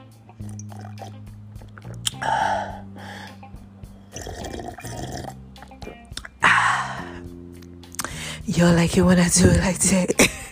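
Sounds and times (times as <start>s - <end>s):
sipping and slurping of coconut water: 0.4s - 2.8s, 4.1s - 6.4s
gulping: 0.4s - 3.3s, 4.1s - 7.2s
speech: 8.5s - 10.4s.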